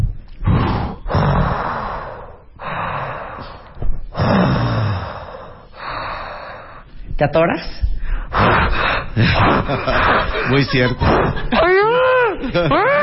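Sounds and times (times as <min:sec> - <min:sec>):
person imitating scuba diver breathing through a regulator: 0:00.4 - 0:06.8
speech: 0:07.2 - 0:11.7, 0:12.4 - 0:13.0
laughter: 0:09.2 - 0:13.0.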